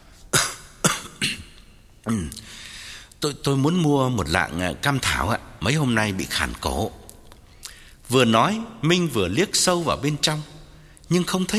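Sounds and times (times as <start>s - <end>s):
person faking coughs on purpose: 0.4s - 2.5s
speech: 2.0s - 2.6s, 3.2s - 7.0s, 8.1s - 11.5s.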